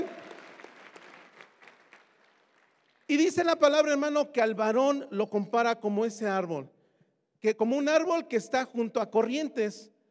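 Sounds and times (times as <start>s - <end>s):
audience applauding: 0.0s - 3.1s
speech: 3.1s - 6.8s, 7.4s - 9.9s.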